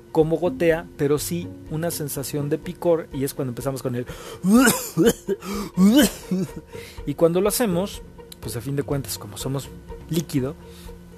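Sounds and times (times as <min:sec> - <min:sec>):
speech: 0:00.2 - 0:10.9
person deliberately coughing and clearing throat with a wet phlegmy rasp: 0:04.4 - 0:06.6.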